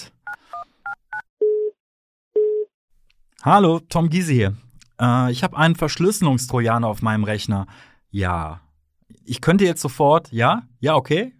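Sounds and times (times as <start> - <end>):
longer single-tone phone rings: 0.3 - 1.8
speech: 3.4 - 8.6, 9.3 - 11.3.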